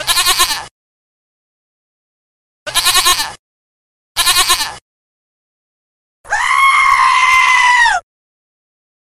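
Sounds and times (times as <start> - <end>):
goat bleating: 0.0 - 0.7, 2.7 - 3.4, 4.2 - 4.8, 6.3 - 8.0.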